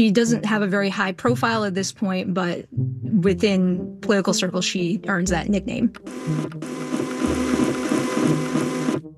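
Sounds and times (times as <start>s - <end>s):
speech: 0.0s - 7.4s
printer motor hum winding down: 6.0s - 9.0s
printer whirring and rattling as it feeds pages: 6.1s - 9.0s.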